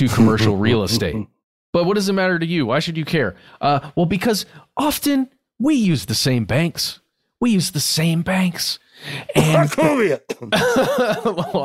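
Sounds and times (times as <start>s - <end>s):
speech: 0.0s - 11.6s
laughter: 9.3s - 11.6s
person mock coughing imitating a bank name: 9.3s - 11.6s.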